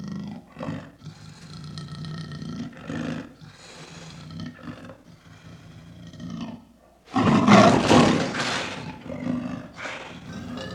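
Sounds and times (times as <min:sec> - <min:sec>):
leopard growling: 0:04.1 - 0:10.7.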